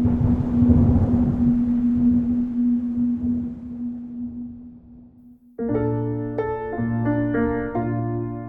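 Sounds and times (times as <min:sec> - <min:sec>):
gusty stormy wind roaring: 0:00.0 - 0:05.3
steady low hum of a tall tower in stormy wind: 0:00.0 - 0:05.6
loud eerie harmonic drones of a tall tower in stormy wind: 0:00.0 - 0:08.4.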